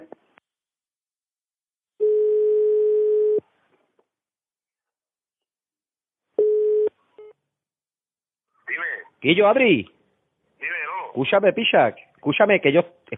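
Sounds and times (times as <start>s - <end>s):
telephone dial tone after a dropped call: 2.0s - 3.4s, 6.4s - 7.3s
speech: 9.2s - 10.0s, 11.2s - 13.1s.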